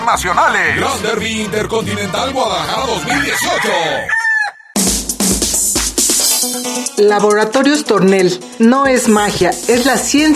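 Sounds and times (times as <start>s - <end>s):
speech: 0.1s - 4.2s, 7.0s - 10.3s
gamecock crowing at a cockfighting tournament: 2.9s - 4.8s.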